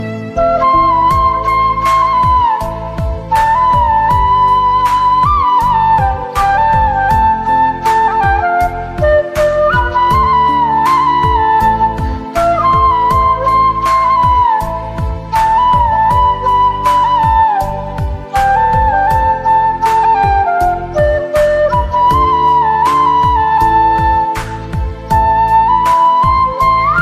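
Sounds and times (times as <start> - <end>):
romantic flute ringtone melody of a Hindi song: 0.0 - 27.0.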